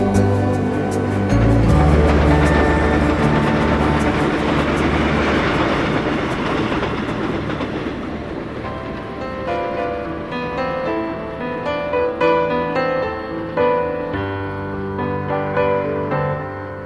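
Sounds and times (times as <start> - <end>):
bright piano-like notes: 0.0 - 16.8
train rumbling along the tracks: 0.0 - 16.8.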